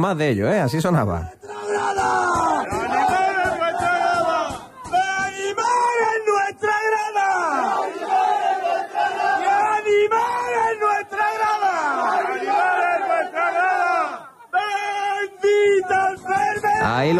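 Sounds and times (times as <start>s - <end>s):
speech: 0.0s - 2.8s
man shouting and yelling in celebration: 1.3s - 7.7s, 9.4s - 12.0s, 13.1s - 17.1s
cheering chanting crowd of supporters: 1.3s - 17.1s.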